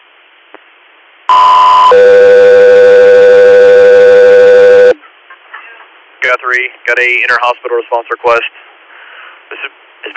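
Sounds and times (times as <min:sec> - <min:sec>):
faint radio hiss: 0:00.0 - 0:10.1
two-tone radio dispatch alert: 0:01.3 - 0:05.0
speech: 0:06.6 - 0:08.7, 0:09.5 - 0:10.1.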